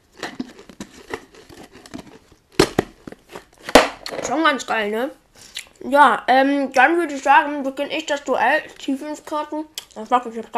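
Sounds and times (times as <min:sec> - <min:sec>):
Pringles potato crisps being eaten: 0:00.0 - 0:03.6
speech: 0:04.3 - 0:05.2, 0:05.8 - 0:10.5.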